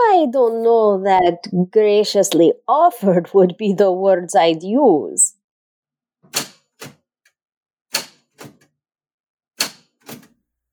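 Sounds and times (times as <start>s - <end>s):
speech: 0.2s - 5.3s
typewriter being clattered and fiddled with: 7.9s - 8.7s, 9.6s - 10.4s.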